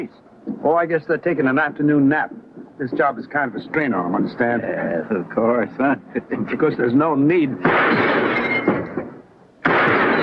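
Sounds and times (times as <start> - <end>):
speech: 0.0 - 8.5
gunshots fired at a row of gas lanterns in front of a saloon: 7.6 - 10.2.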